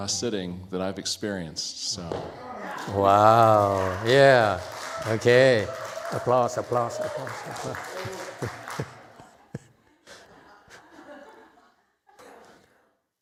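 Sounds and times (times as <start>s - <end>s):
speech: 0.0s - 8.9s
audience laughter: 2.4s - 4.4s, 7.2s - 12.7s
audience applause: 2.6s - 9.4s.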